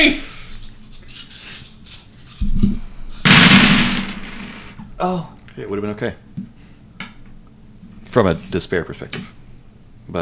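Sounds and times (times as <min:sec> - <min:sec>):
cannon firing: 0:03.2 - 0:04.8
speech: 0:05.0 - 0:06.5, 0:08.1 - 0:09.4.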